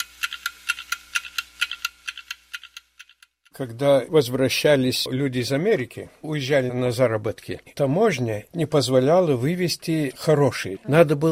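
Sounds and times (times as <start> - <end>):
several 150-year-old clocks ticking: 0.0 - 3.6
speech: 3.6 - 11.3.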